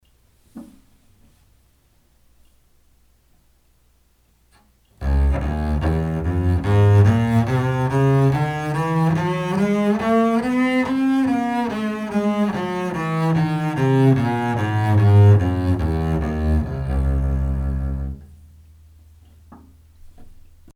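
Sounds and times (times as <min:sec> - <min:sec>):
bass playing in C minor: 0:05.0 - 0:18.6.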